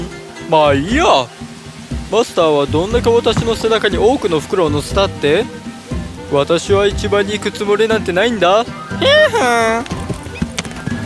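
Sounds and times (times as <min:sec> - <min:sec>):
speech: 0:00.5 - 0:01.4, 0:02.1 - 0:05.7, 0:06.3 - 0:10.0
donkey hooves clopping: 0:02.8 - 0:08.1, 0:08.7 - 0:11.0
donkey braying while led into a river: 0:08.6 - 0:11.0.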